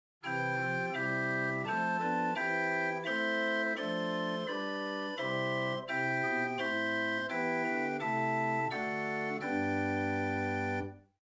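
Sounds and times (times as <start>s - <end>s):
Ott chamber organ with Gedackt Rohrflote stop: 0.2s - 11.0s.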